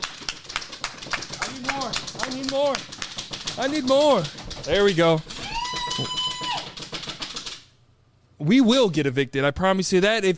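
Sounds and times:
small group applauding: 0.0 - 7.6
speech: 2.5 - 3.0, 3.6 - 5.3, 8.4 - 10.3
voices whooping and cheering: 5.4 - 6.7.

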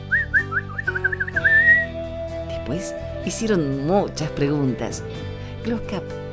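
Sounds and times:
soft musical backdrop: 0.0 - 6.3
children whistling in imitation of bird songs: 0.1 - 2.0
speech: 2.7 - 6.2.

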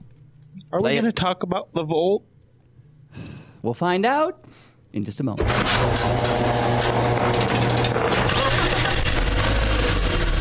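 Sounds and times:
speech: 0.7 - 2.3, 3.2 - 8.1
car engine starting and pulling away: 5.5 - 10.3.

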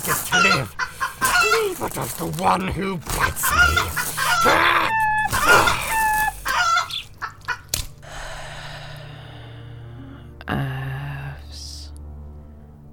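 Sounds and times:
bird squawking with clucking crowing-like calls: 0.0 - 2.0, 3.1 - 7.7
speech: 0.1 - 0.8, 1.6 - 5.8.

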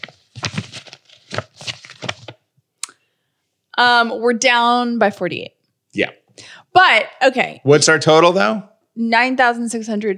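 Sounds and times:
folded paper index card being opened: 0.0 - 2.4
speech: 3.8 - 10.1.

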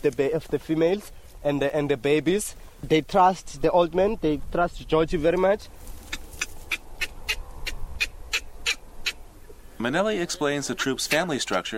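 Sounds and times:
speech: 0.0 - 5.9, 9.8 - 11.7
baby baboon crying to nurse with shrill squeaks: 6.0 - 9.3.

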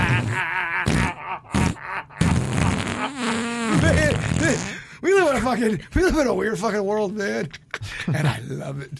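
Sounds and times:
voice doing an imitation of a fart: 0.0 - 4.8
speech: 5.4 - 8.9.

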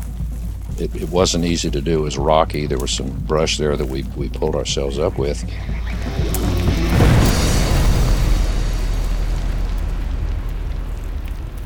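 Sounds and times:
speech: 0.8 - 6.4
dynamite explosion reverberating through canyon: 4.8 - 11.6.

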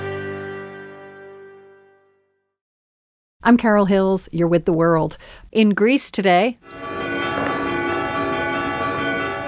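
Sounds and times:
speech: 3.5 - 7.0
church bells ringing in Greece for Epiphany services: 6.7 - 9.4.

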